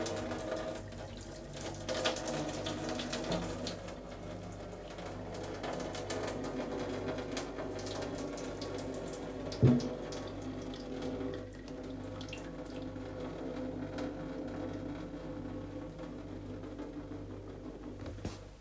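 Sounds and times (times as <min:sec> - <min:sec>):
hot water draining from an instant noodle cup into a sink: 0:00.0 - 0:18.3
knock: 0:09.6 - 0:09.9.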